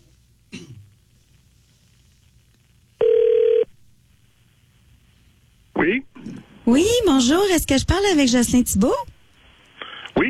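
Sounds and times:
person coughing: 0:00.5 - 0:00.9
telephone ring tone after dialing: 0:03.0 - 0:03.7
speech: 0:06.7 - 0:09.1.

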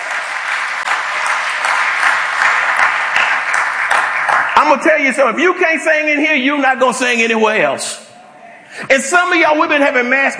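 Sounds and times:
church congregation clapping in praise for the choir singers: 0:00.0 - 0:06.4
speech: 0:04.6 - 0:08.1, 0:08.8 - 0:10.3.

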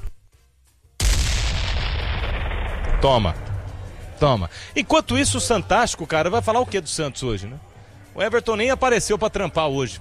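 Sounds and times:
bomb explosion sound effect: 0:01.0 - 0:03.7
speech: 0:03.0 - 0:03.4, 0:04.2 - 0:09.9.

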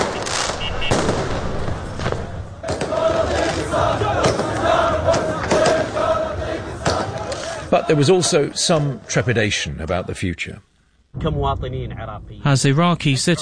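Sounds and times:
sharp cracks and bangs: 0:00.0 - 0:06.0
crowd cheering and shouting in celebration at night in Baghdad: 0:02.6 - 0:08.2
speech: 0:07.8 - 0:13.3.

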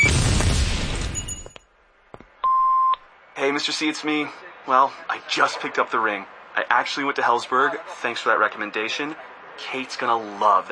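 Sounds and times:
fireworks booming: 0:00.0 - 0:01.3
speech: 0:03.5 - 0:10.7.

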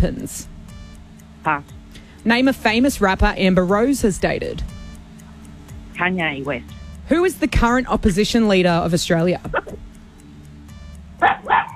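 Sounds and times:
speech: 0:00.0 - 0:00.6, 0:01.4 - 0:04.7, 0:06.0 - 0:09.8
dog barking: 0:11.2 - 0:11.7.

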